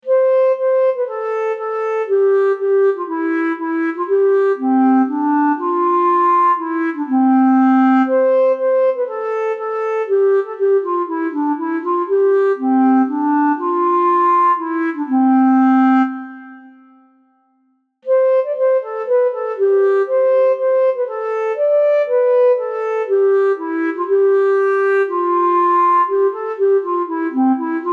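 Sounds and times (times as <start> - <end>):
Bb clarinet: 0.0 - 27.9.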